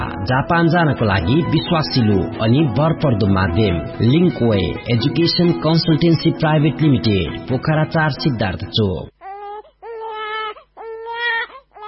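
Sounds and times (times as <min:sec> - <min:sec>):
speech: 0:00.2 - 0:09.1
small girl sick with diarrhea crying: 0:09.2 - 0:11.8.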